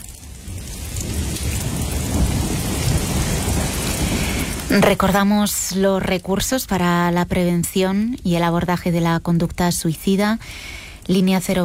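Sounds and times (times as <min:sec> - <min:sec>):
deep low thunder rumbling: 0:00.0 - 0:11.6
steady dense thunderstorm rain: 0:00.0 - 0:11.6
speech: 0:04.7 - 0:11.6.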